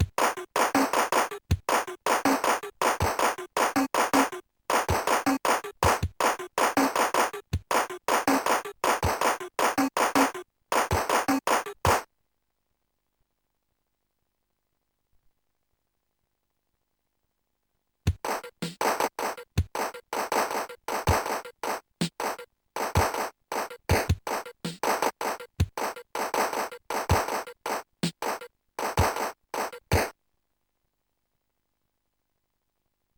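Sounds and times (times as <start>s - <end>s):
drum rhythms: 0.0s - 12.1s, 18.1s - 30.2s.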